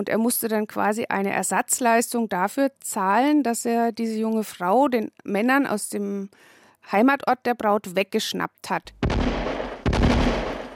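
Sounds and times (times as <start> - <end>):
speech: 0.0 - 9.0
ceremonial black-powder salute shots: 9.0 - 10.7.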